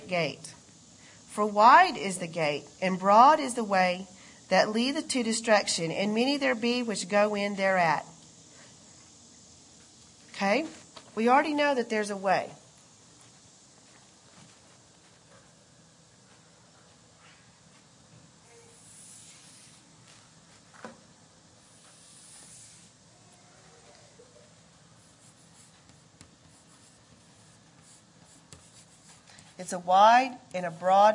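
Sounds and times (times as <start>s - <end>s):
low hiss: 0.0s - 31.1s
speech: 0.1s - 0.6s, 1.4s - 8.1s, 10.4s - 12.6s, 29.7s - 31.1s
drawing on a board: 25.0s - 29.6s.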